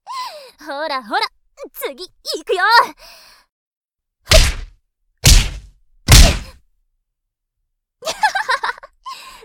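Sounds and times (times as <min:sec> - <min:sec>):
speech: 0:00.6 - 0:03.3
heavy boxing punches landing: 0:04.3 - 0:06.6.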